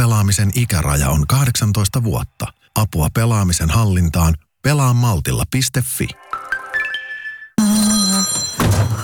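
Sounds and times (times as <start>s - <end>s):
speech: 0.0s - 6.2s
telephone ringing for an incoming call with a bright electronic tone: 7.6s - 9.0s.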